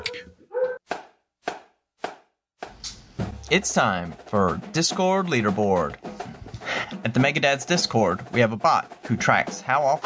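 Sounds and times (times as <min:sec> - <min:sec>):
dog barking: 0:00.0 - 0:00.8
speech: 0:03.5 - 0:06.1, 0:07.0 - 0:10.0.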